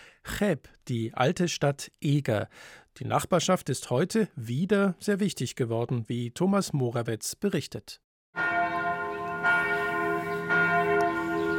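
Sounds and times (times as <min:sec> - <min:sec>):
speech: 0:00.4 - 0:08.5
large abbey basilica church bells ringing at noon: 0:08.4 - 0:11.5.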